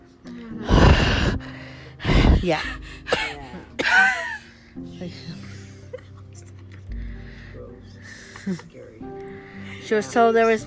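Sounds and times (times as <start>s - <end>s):
person imitating heavy breathing of a prank phone call: 0.6s - 1.4s
speech: 2.4s - 2.9s, 8.5s - 8.8s, 9.9s - 10.6s.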